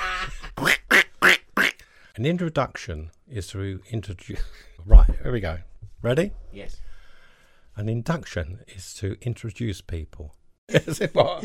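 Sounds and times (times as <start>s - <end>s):
person imitating duck quacks: 0.0s - 1.8s
speech: 2.2s - 6.9s, 7.8s - 11.4s.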